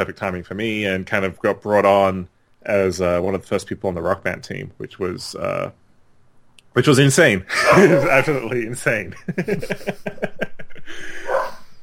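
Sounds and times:
speech: 0:00.0 - 0:05.8, 0:06.8 - 0:11.1
laughter: 0:07.5 - 0:11.4
dog barking: 0:07.6 - 0:08.2, 0:11.2 - 0:11.7
dog whining and yelping: 0:11.3 - 0:11.6.

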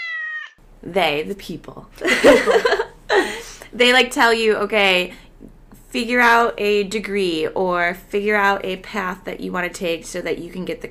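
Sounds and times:
cat meowing: 0:00.0 - 0:00.6
speech: 0:00.8 - 0:02.8, 0:03.7 - 0:05.2, 0:05.9 - 0:10.8
laughter: 0:02.0 - 0:03.5.

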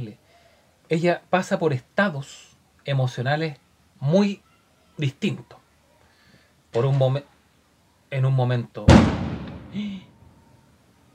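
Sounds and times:
speech: 0:00.9 - 0:05.6, 0:06.8 - 0:07.3, 0:08.1 - 0:10.1
gunshot outside with rumbling echo: 0:08.9 - 0:10.0
faint tonal whine: 0:10.0 - 0:11.1.

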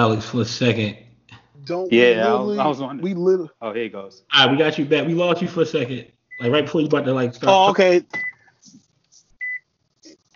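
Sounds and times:
speech: 0:00.0 - 0:01.0, 0:01.6 - 0:08.8
electronic beeps from a microwave oven: 0:06.3 - 0:06.6, 0:08.2 - 0:08.4, 0:09.4 - 0:09.7.

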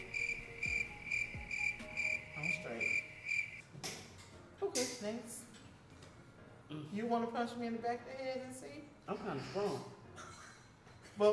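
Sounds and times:
crickets chirping: 0:00.0 - 0:03.6
speech: 0:05.0 - 0:05.5, 0:06.7 - 0:10.0, 0:11.2 - 0:11.3.

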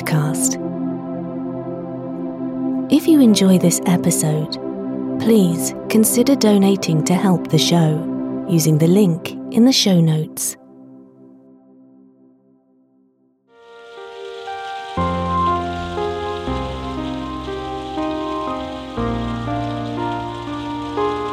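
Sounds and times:
gentle sustained music chords: 0:00.0 - 0:11.8, 0:13.6 - 0:21.3
speech: 0:00.1 - 0:00.7, 0:02.9 - 0:10.6
light rain pattering: 0:13.6 - 0:21.3.

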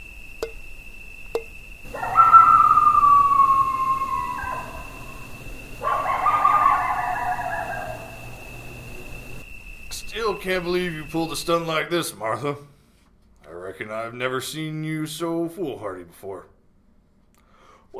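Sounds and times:
steady high insect trill: 0:00.0 - 0:12.8
coyote howling at dusk: 0:01.8 - 0:09.4
speech: 0:10.4 - 0:12.7, 0:13.8 - 0:16.5.

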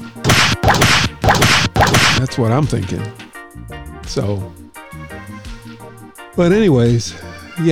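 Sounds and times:
whip cracks: 0:00.2 - 0:02.3
speech: 0:02.2 - 0:04.6, 0:06.4 - 0:07.7.

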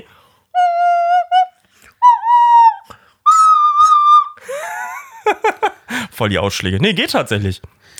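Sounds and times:
nose flute playing whistly notes and sputtering squeaks: 0:00.6 - 0:04.4
speech: 0:06.2 - 0:07.7.

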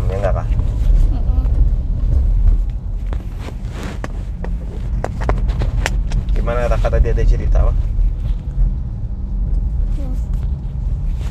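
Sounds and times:
heavy low rumble of engine and road noise inside a moving car: 0:00.0 - 0:11.3
sharp clicks and knocks inside a moving car: 0:04.0 - 0:06.4.

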